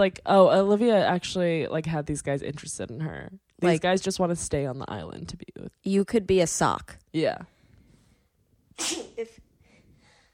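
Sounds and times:
speech: 0.0 - 7.5, 8.8 - 9.4
single sharp breathy sneeze with a snort: 8.8 - 9.4.

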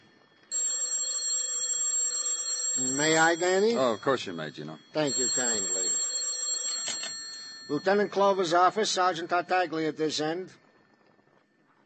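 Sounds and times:
telephone ringing in a police lieutenant's office: 0.0 - 9.5
speech: 3.0 - 5.8, 7.7 - 10.6.

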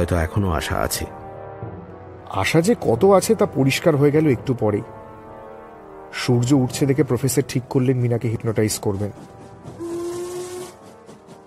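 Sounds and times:
speech: 0.0 - 1.2, 2.3 - 5.0, 6.1 - 9.8
steam train whistle aboard a moving train: 9.6 - 11.4.

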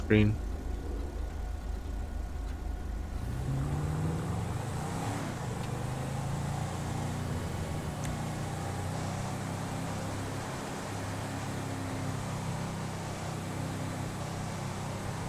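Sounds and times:
road traffic noise: 0.0 - 15.2
speech: 0.1 - 0.5
car accelerating past through intersection: 3.1 - 13.1.

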